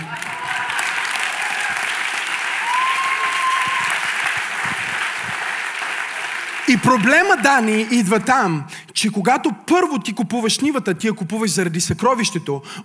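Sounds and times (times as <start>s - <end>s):
audience applause: 0.0s - 7.8s
speech: 6.7s - 12.8s.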